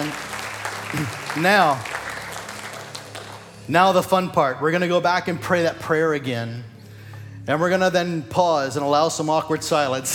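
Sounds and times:
audience applauding: 0:00.0 - 0:03.7
speech: 0:00.9 - 0:02.0, 0:03.7 - 0:06.7, 0:07.4 - 0:10.1.

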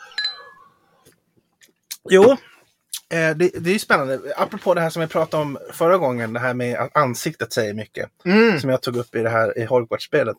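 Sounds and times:
glasses clinking in a toast: 0:00.0 - 0:00.7
speech: 0:02.0 - 0:02.5, 0:03.1 - 0:10.3.

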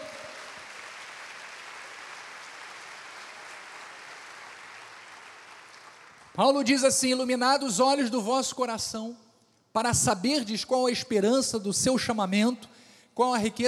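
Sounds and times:
crowd applauding: 0:00.0 - 0:06.4
speech: 0:06.4 - 0:09.2, 0:09.8 - 0:13.6.

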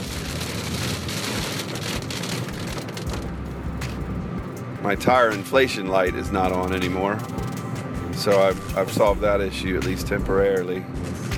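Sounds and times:
heavy rain pouring down while travelling a road: 0:00.0 - 0:05.2
speech: 0:04.8 - 0:07.4, 0:08.2 - 0:11.1.

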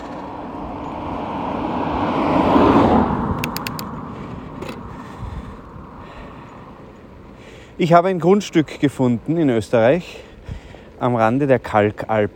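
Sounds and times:
car passing by on a country road: 0:00.0 - 0:06.8
faint clicks: 0:03.4 - 0:03.9
speech: 0:07.8 - 0:10.3, 0:11.0 - 0:12.3.

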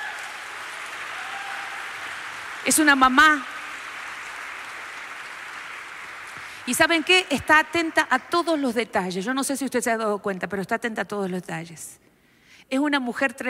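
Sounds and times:
church audience applause: 0:00.0 - 0:07.2
speech: 0:02.6 - 0:03.5, 0:06.7 - 0:12.1, 0:12.7 - 0:13.4.

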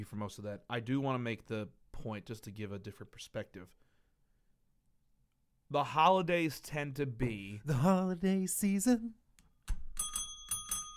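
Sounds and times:
speech: 0:00.0 - 0:03.9, 0:05.7 - 0:09.8
small handbell ringing: 0:10.0 - 0:10.9.

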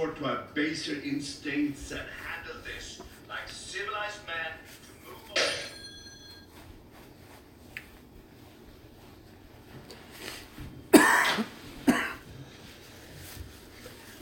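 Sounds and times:
speech: 0:00.1 - 0:04.8
person coughing after choking on something down the wrong windpipe: 0:10.9 - 0:12.3.

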